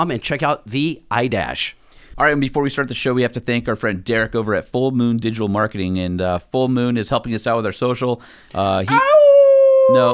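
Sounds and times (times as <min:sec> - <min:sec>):
speech: 0:00.0 - 0:09.2, 0:09.9 - 0:10.1
person imitating a wolf howl: 0:08.9 - 0:10.1.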